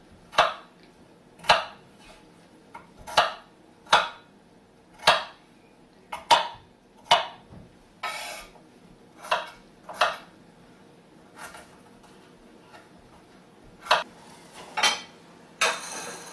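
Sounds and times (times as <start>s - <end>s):
knife chopping potatoes into small chunks on a board: 0.3s - 0.8s, 1.4s - 4.3s, 4.9s - 5.4s, 6.1s - 8.6s, 9.2s - 10.3s, 11.3s - 14.1s.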